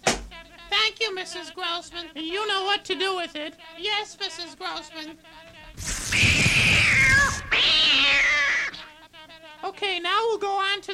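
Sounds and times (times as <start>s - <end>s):
speech: 1.1s - 6.4s, 9.7s - 10.9s
cat caterwauling: 5.8s - 8.9s.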